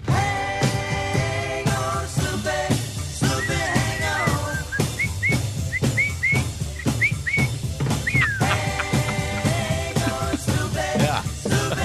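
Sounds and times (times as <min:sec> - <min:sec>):
busy band with steady drums and guitars: 0:00.0 - 0:11.8
whistled melody from a 1960s pop recording: 0:03.2 - 0:09.2
laughter: 0:08.1 - 0:11.8.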